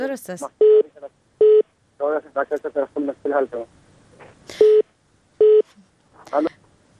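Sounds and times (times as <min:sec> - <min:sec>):
speech: 0:00.0 - 0:00.8, 0:02.0 - 0:03.8, 0:06.3 - 0:06.6
telephone line beeps after a call drops: 0:04.6 - 0:04.8, 0:05.4 - 0:05.6.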